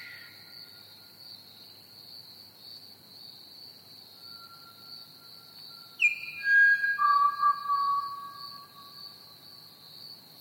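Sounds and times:
crickets chirping in a steady high trill: 0.0 - 10.4
Pied Butcherbird fluty whistled song: 6.0 - 9.0.

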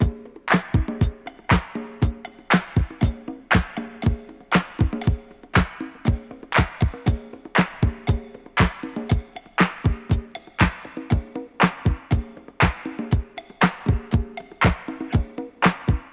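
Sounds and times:
119 bpm modern drum loop in B key: 0.0 - 16.1.

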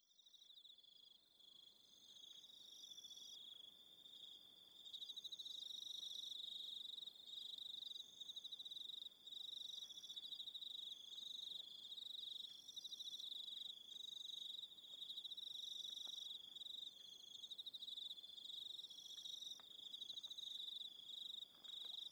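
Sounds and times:
crickets chirping: 0.2 - 22.1.

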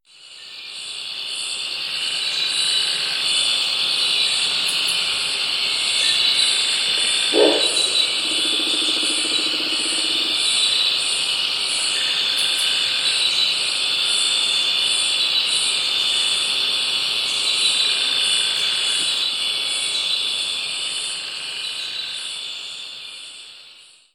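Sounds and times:
insects: 0.1 - 24.1
barking frogs: 6.2 - 11.0.

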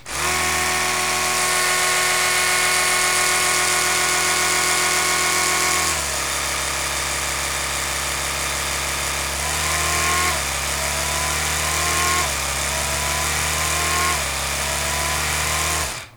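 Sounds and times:
electric toothbrush: 0.0 - 16.1.

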